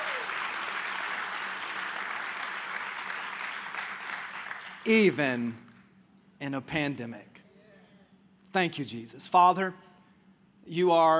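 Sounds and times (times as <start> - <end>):
church audience clapping during a service: 0.0 - 5.8
speech: 4.8 - 5.6, 6.4 - 7.3, 8.5 - 9.9, 10.6 - 11.1.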